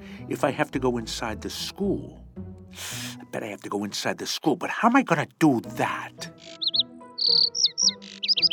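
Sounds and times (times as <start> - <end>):
speech: 0.3 - 6.6
bird chirping in bright high tweets and short whistled notes: 6.3 - 8.5.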